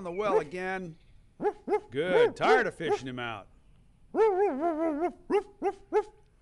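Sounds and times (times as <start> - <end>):
speech: 0.0 - 3.5, 4.1 - 6.2
dog barking: 0.3 - 0.5, 1.4 - 3.1, 4.2 - 6.2
dog whining: 4.2 - 6.1.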